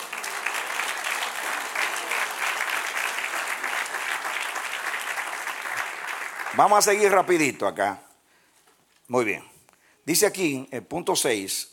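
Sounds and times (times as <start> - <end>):
audience applause: 0.0 - 7.2
speech: 6.6 - 8.0, 9.1 - 9.5, 10.1 - 11.7.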